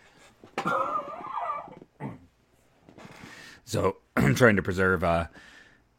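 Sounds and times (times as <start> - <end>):
person coughing off the microphone during a live stream: 0.6 - 2.3
speech: 3.7 - 5.5.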